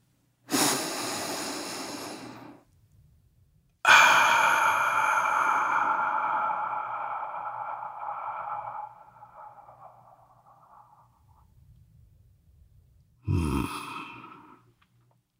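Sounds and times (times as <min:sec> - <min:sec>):
deep breath: 0:00.5 - 0:02.7, 0:03.9 - 0:12.0, 0:13.2 - 0:14.8.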